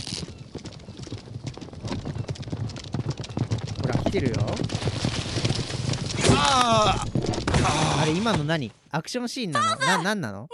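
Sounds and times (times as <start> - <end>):
horse hooves clip-clopping: 0.0 - 8.1
speech: 4.1 - 5.1, 6.4 - 10.5.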